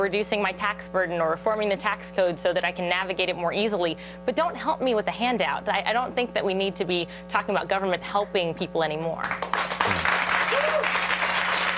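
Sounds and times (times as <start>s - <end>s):
speech: 0.0s - 9.7s
audience applause at a political speech: 9.4s - 11.7s.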